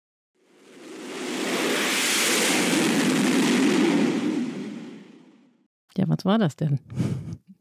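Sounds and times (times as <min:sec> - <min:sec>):
fighter jet launching from an aircraft carrier: 0:00.4 - 0:05.5
speech: 0:06.0 - 0:07.5.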